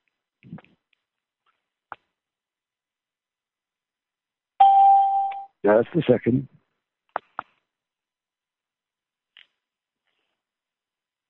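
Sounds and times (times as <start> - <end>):
electronic conference call entry chime ding: 4.6 - 5.5
speech: 5.6 - 6.6.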